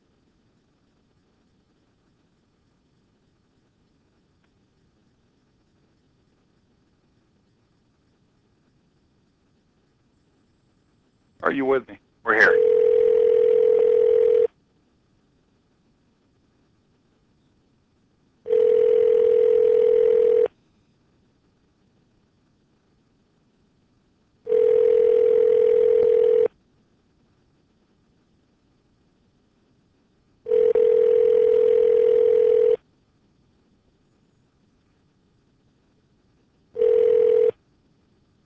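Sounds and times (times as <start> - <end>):
speech: 11.5 - 12.8
telephone ringback tone: 12.3 - 14.5, 18.5 - 20.5, 24.5 - 26.5, 30.5 - 32.8, 36.8 - 37.6.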